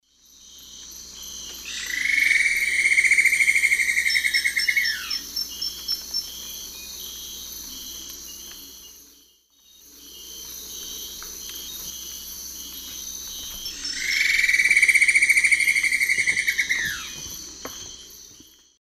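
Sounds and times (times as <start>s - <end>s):
Dendrexetastes rufigula song in South American eastern lowlands: 1.7s - 7.4s, 13.4s - 17.4s.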